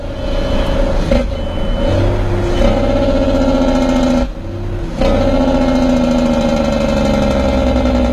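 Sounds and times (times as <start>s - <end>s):
truck engine droning at around 95 kilometres per hour: 0.0s - 8.1s.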